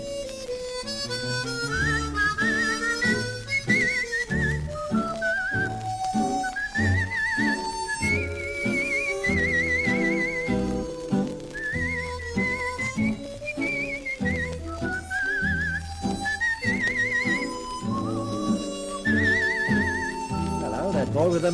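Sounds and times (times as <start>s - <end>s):
person whistling a cheerful melody with vibrato: 0.0s - 21.5s
steady instrumental backing music: 0.0s - 21.5s.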